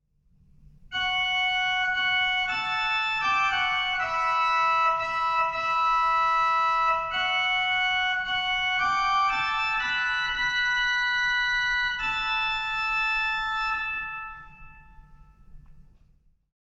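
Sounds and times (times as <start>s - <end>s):
organ playing a five-rank register: 0.9s - 15.6s.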